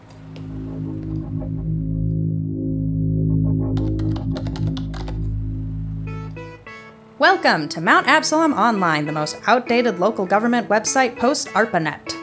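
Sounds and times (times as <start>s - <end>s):
steady low electronic hum: 0.0s - 7.6s
typing on a house computer keyboard: 3.8s - 5.2s
speech: 7.2s - 12.2s.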